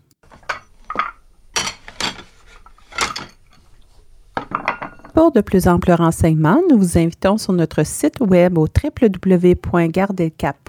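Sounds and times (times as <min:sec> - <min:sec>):
dishes and cutlery clinking during dishwashing: 0:00.3 - 0:05.2
speech: 0:05.2 - 0:10.6.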